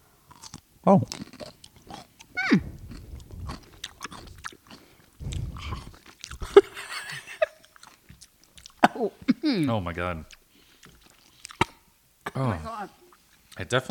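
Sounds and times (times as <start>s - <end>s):
person biting into a pickle with a crisp crunch: 0.3s - 6.6s, 10.8s - 11.8s
faint irregular wet crunches and smacks of chewing a pickle: 0.3s - 9.4s, 10.2s - 11.8s, 13.1s - 13.7s
speech: 0.8s - 1.3s, 9.5s - 10.4s, 12.4s - 13.0s, 13.6s - 13.8s.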